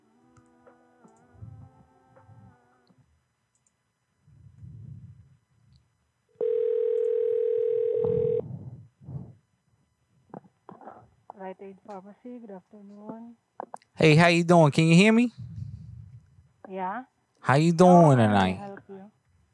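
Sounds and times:
soft low noises: 0:00.0 - 0:16.7
telephone ringback tone while a call to a pharmacy is transferred: 0:06.4 - 0:08.4
speech: 0:11.5 - 0:15.5, 0:16.7 - 0:19.0.

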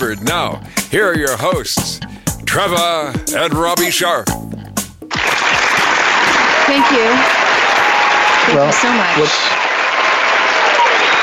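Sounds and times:
speech: 0:00.0 - 0:04.6, 0:06.7 - 0:07.5, 0:08.5 - 0:09.6
crowd applause: 0:05.1 - 0:11.2.

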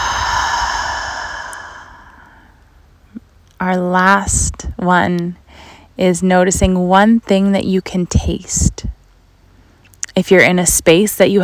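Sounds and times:
deep breath outdoors in through the nose and out through the mouth: 0:00.0 - 0:02.6, 0:05.5 - 0:05.9
speech: 0:03.6 - 0:09.0, 0:10.2 - 0:11.4.

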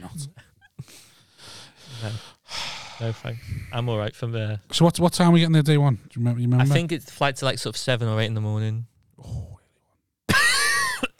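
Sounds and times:
speech: 0:00.0 - 0:01.0, 0:02.0 - 0:02.3, 0:03.0 - 0:09.4
wheezy cough: 0:10.3 - 0:11.1.

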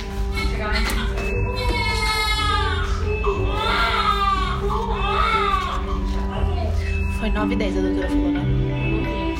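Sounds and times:
faint music: 0:00.0 - 0:09.3
newborn's thin wavering cries: 0:00.2 - 0:07.0
indistinct voices: 0:00.2 - 0:09.3
speech: 0:07.4 - 0:09.1.

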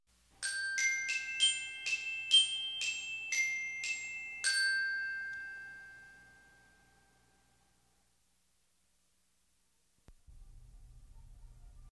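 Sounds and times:
dinner chimes: 0:00.4 - 0:07.6.

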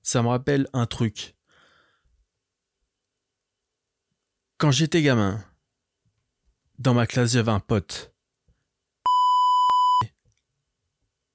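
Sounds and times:
speech: 0:00.0 - 0:01.4, 0:04.6 - 0:05.5, 0:06.8 - 0:08.1
high-pitched censor bleep covering a person's name: 0:09.1 - 0:10.1.

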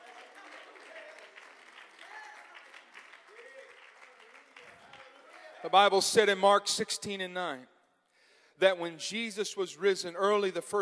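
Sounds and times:
audience clapping hands: 0:00.0 - 0:05.8
people calling out and cheering: 0:00.0 - 0:06.0
speech: 0:05.6 - 0:07.7, 0:08.6 - 0:10.8.

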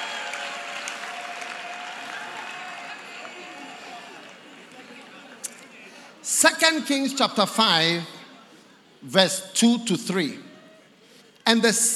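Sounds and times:
audience clapping: 0:00.0 - 0:05.1
speech: 0:06.4 - 0:08.2, 0:09.1 - 0:10.5, 0:11.5 - 0:11.9.

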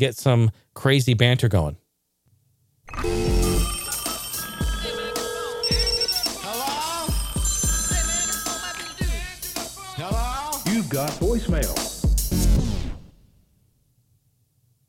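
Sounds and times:
speech: 0:00.0 - 0:01.8
dense loud electronic tones and effects: 0:02.9 - 0:08.5
telephone ringing: 0:02.9 - 0:10.0
chopped voice-like snippets: 0:03.4 - 0:11.9.

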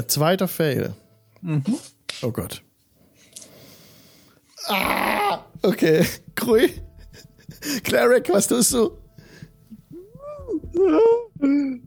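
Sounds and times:
speech: 0:00.0 - 0:02.7, 0:04.6 - 0:09.0, 0:10.7 - 0:11.8
person wailing: 0:04.6 - 0:05.6, 0:09.9 - 0:11.8.

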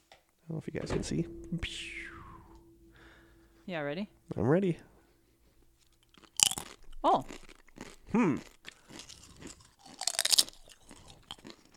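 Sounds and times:
speech: 0:00.5 - 0:02.1, 0:03.7 - 0:04.9, 0:07.0 - 0:07.4, 0:08.1 - 0:08.6
someone biting and chewing thin light potato chips: 0:06.1 - 0:11.7.

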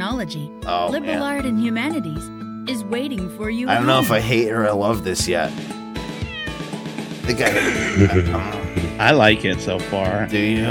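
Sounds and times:
speech: 0:00.2 - 0:05.8, 0:07.3 - 0:10.6
laughter: 0:03.7 - 0:04.6, 0:07.3 - 0:09.4
bionic home robot cat meowing: 0:06.2 - 0:06.6.

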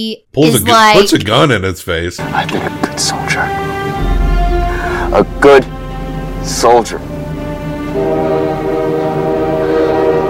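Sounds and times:
speech: 0:00.0 - 0:04.0, 0:05.1 - 0:05.8, 0:06.4 - 0:07.1
low rumble of the train: 0:02.2 - 0:10.2
train whistle blowing: 0:07.3 - 0:10.2.

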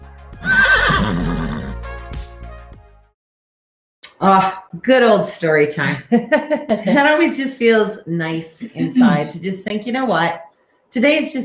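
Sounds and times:
horse neighing: 0:00.4 - 0:01.8
speech: 0:04.2 - 0:11.4.

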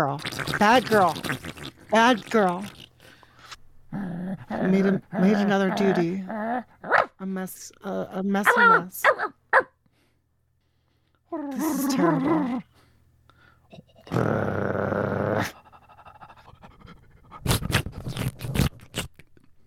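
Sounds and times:
speech: 0:00.0 - 0:02.8, 0:03.9 - 0:09.3, 0:11.3 - 0:12.7, 0:13.7 - 0:15.6
dog growling: 0:00.0 - 0:03.2, 0:03.9 - 0:07.2, 0:08.4 - 0:08.9, 0:11.3 - 0:12.7, 0:13.7 - 0:19.1
dog panting: 0:15.6 - 0:17.8.

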